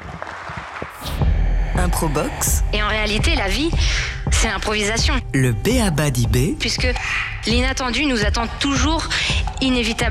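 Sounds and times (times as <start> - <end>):
live audience applause: 0.0 - 1.0
speech: 1.8 - 10.0.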